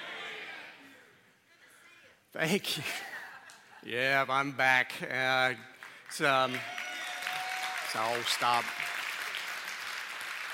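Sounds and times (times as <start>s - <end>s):
speech: 2.3s - 3.1s, 3.8s - 6.8s, 7.9s - 8.8s
church audience applause: 5.8s - 10.5s.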